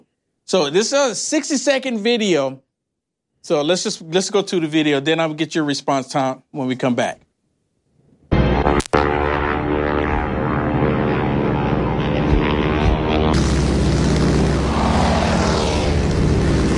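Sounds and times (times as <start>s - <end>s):
speech: 0.5s - 2.7s, 3.4s - 7.3s
biplane propeller engines droning: 8.3s - 16.7s
windy roar of passing biplanes: 8.4s - 16.7s.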